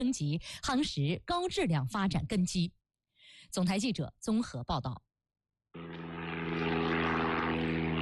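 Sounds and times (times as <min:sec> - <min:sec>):
speech: 0:00.1 - 0:02.8, 0:03.4 - 0:05.1
large propeller cargo drone deep engine hum: 0:05.8 - 0:08.0.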